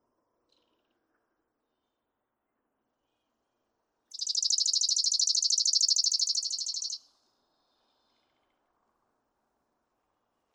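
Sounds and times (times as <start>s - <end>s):
chipping sparrow trilling: 4.1s - 7.0s.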